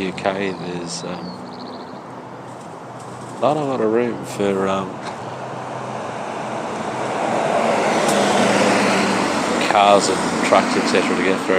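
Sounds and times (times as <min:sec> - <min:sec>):
speech: 0:00.0 - 0:01.6, 0:03.4 - 0:05.0, 0:09.8 - 0:11.5
airline crew bus passing along a narrow suburban London street: 0:00.0 - 0:11.5.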